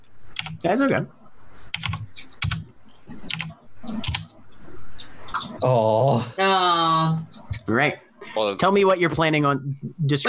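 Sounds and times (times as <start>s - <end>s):
typing on a computer keyboard: 0.3s - 0.6s, 1.7s - 4.3s
speech: 0.6s - 1.2s, 5.6s - 10.2s.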